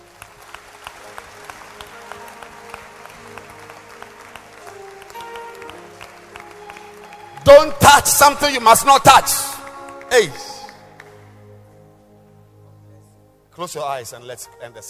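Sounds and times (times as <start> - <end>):
audience clapping hands: 0.0 - 11.4
speech: 7.5 - 9.5, 10.1 - 10.5, 13.6 - 14.8.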